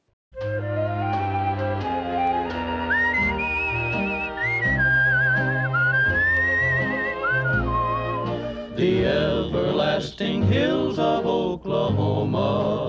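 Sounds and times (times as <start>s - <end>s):
band accompaniment of bass and sustained chords: 0.4s - 8.5s
person whistling a smooth wavering melody: 0.4s - 8.8s
speech: 10.0s - 12.7s.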